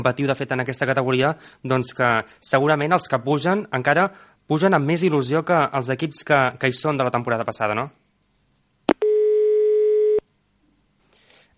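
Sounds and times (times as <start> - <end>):
speech: 0.0 - 8.0
telephone busy tone after a dropped call: 8.9 - 10.2.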